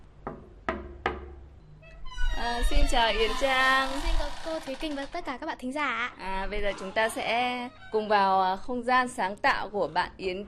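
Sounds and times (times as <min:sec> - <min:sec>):
knocking on a door: 0:00.2 - 0:01.4
speech: 0:02.4 - 0:10.4.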